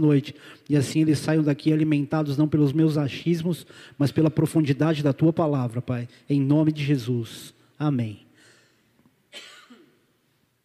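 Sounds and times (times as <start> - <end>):
speech: 0.0 - 8.2
person coughing: 9.3 - 10.0.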